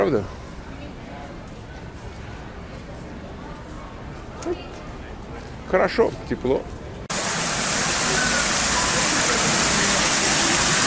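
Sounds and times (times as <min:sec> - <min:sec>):
speech: 0:00.0 - 0:00.4, 0:05.7 - 0:06.8
small waterfall splashing: 0:07.1 - 0:10.8.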